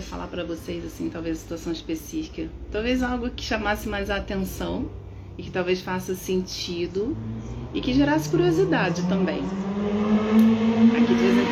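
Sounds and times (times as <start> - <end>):
speech: 0.0 - 10.0
motorcycles passing by: 6.7 - 11.5.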